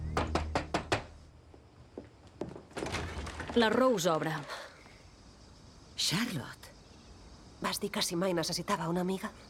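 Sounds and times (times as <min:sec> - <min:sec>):
person knocking on a door window: 0:00.2 - 0:01.1
speech: 0:03.6 - 0:04.6, 0:06.1 - 0:06.6, 0:07.6 - 0:09.4.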